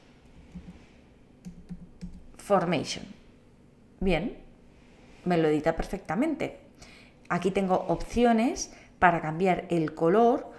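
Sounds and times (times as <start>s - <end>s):
faint hum: 0.0s - 10.5s
soft computer keyboard typing while editing text: 1.4s - 2.3s
speech: 2.5s - 3.2s, 4.0s - 4.4s, 5.2s - 6.6s, 7.3s - 10.5s.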